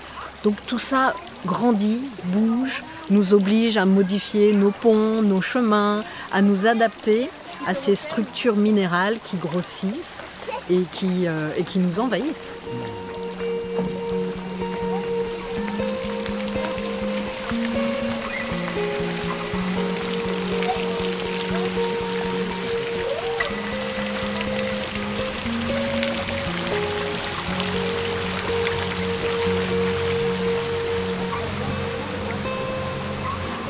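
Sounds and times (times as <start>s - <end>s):
spring water flowing from a resurgence at a large petrifying fountain in a garden: 0.0s - 33.6s
speech: 0.4s - 13.2s
steady tonal hums: 11.9s - 33.6s.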